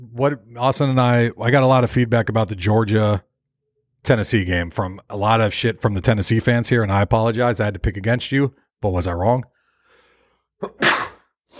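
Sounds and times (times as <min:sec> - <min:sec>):
speech: 0:00.2 - 0:03.3, 0:04.0 - 0:09.6, 0:10.6 - 0:10.9
person sneezing: 0:10.6 - 0:11.5.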